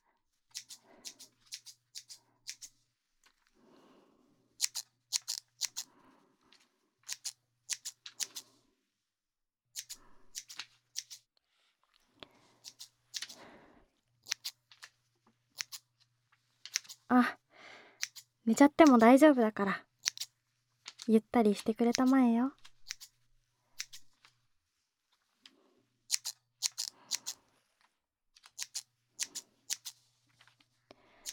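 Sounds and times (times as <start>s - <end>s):
crisp scissors snipping: 0.5s - 2.8s, 4.6s - 5.9s, 7.0s - 8.4s, 9.8s - 11.2s, 12.6s - 13.4s, 14.2s - 14.9s, 15.6s - 15.8s, 16.7s - 17.1s, 18.0s - 19.1s, 20.0s - 20.3s, 21.9s - 23.1s, 23.8s - 24.2s, 26.1s - 27.4s, 28.4s - 30.0s
speech: 18.5s - 19.9s, 21.1s - 22.6s.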